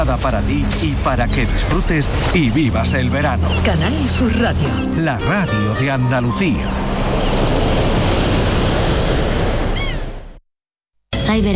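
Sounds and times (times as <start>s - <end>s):
splashing water: 0.0s - 10.0s
speech: 0.1s - 7.3s, 11.3s - 11.5s
high chirping: 2.4s - 8.2s, 9.8s - 10.1s.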